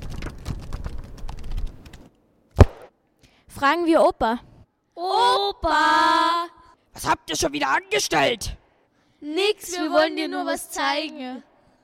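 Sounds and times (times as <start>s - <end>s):
pages of an old book flipping quickly: 0.0s - 2.8s
loud dull thump: 2.6s - 2.9s
speech: 3.6s - 8.6s, 9.2s - 11.5s.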